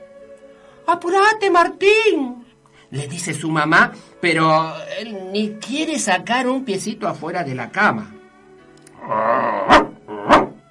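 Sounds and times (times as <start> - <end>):
speech: 0.9 - 8.2
child growling angrily like a dog: 9.0 - 10.5.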